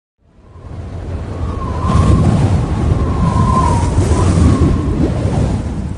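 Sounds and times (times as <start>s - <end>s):
steady loud roar of wind: 0.2s - 5.9s
faint whistling tones: 1.3s - 5.0s.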